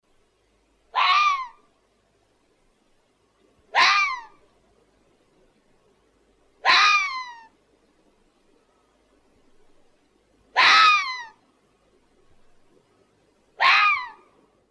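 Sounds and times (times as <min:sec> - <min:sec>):
fox Vulpes vulpes: 0:00.9 - 0:01.7, 0:03.7 - 0:04.5, 0:06.6 - 0:07.6, 0:10.5 - 0:11.4, 0:13.6 - 0:14.4.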